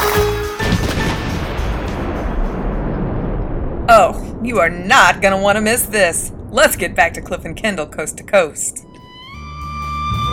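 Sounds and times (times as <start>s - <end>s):
cannon blast: 0.0s - 5.0s
speech: 4.0s - 8.8s.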